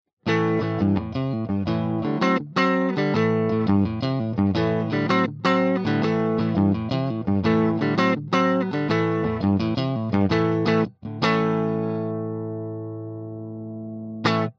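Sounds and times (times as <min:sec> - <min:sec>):
Fender 59 Strat electric guitar via Line 6 Variax JTV-69 direct input: 0:00.2 - 0:14.5.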